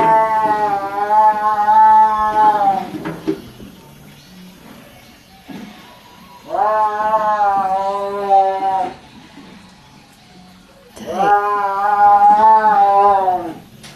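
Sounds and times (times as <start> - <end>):
caged tiger yowling: 0.0 - 2.9, 6.0 - 9.0, 10.9 - 13.7.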